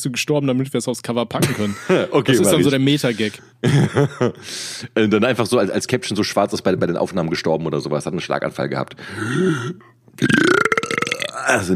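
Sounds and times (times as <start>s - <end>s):
speech: 0.0s - 10.7s, 11.5s - 11.7s
laughter: 3.6s - 4.4s
loud drawn-out burp with a croaking rattle: 9.4s - 11.7s.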